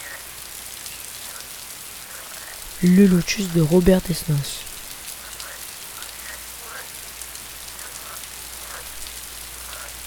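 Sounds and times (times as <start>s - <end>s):
steady rain falling: 0.0s - 10.0s
speech: 2.8s - 4.7s.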